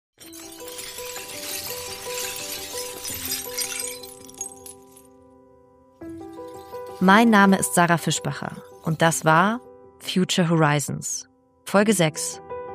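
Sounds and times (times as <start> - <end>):
cracked glued glass container clinking and rattling: 0.2 - 5.2, 6.0 - 9.6
speech: 7.0 - 12.4.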